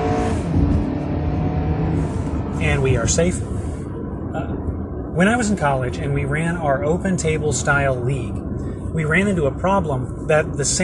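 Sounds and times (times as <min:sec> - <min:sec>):
car engine revving: 0:00.0 - 0:04.7
speech: 0:02.6 - 0:03.6, 0:04.4 - 0:08.4, 0:09.0 - 0:10.8.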